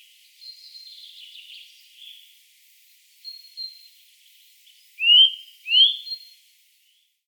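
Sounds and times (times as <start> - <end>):
Eurasian nuthatch Sitta europaea twittering and whistling: 5.0 - 6.1.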